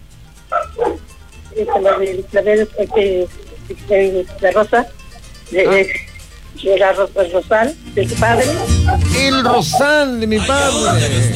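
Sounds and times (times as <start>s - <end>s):
low steady hum: 0.0s - 11.3s
dog barking: 0.5s - 1.0s, 1.6s - 2.2s, 2.8s - 3.1s, 8.4s - 9.8s
speech: 1.6s - 11.3s.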